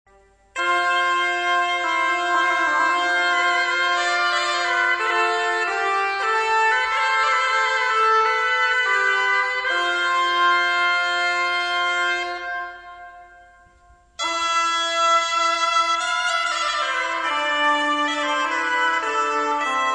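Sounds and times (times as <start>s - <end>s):
chalemie playing: 0.1s - 19.9s.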